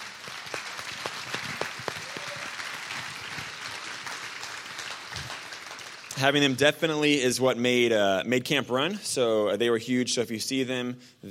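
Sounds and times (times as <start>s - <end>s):
crowd applauding: 0.0s - 6.4s
speech: 6.2s - 11.2s.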